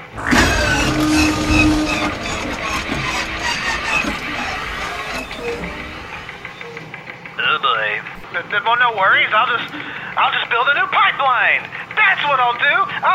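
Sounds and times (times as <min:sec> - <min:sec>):
car engine with just-refilled empty tank cranking and straining to start: 0:00.0 - 0:06.7
speech: 0:08.7 - 0:13.1.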